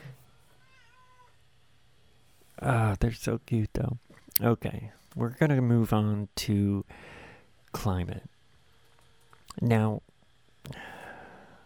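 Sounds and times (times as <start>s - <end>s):
low steady hum: 0.0s - 11.6s
cat meowing: 0.6s - 1.3s
speech: 2.6s - 6.9s, 7.7s - 8.3s, 9.6s - 10.0s, 10.7s - 10.9s.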